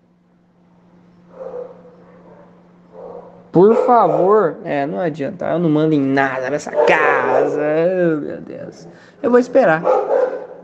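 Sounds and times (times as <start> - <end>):
steady low electrical hum: 0.0 - 10.6
small dog barking: 1.3 - 4.4, 6.7 - 7.6, 9.8 - 10.6
speech: 3.6 - 10.6.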